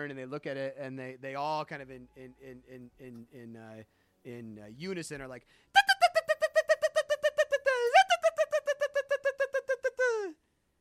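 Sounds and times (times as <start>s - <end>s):
speech: 0.0s - 5.9s
voice imitating a creature's chirping song: 5.8s - 10.4s.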